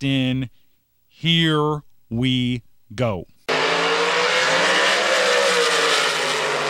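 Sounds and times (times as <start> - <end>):
speech: 0.0 - 0.6, 1.2 - 3.3
drag car high-revving engine droning: 3.5 - 6.6
drag race car tires squealing in a burnout in the water box: 3.5 - 6.6.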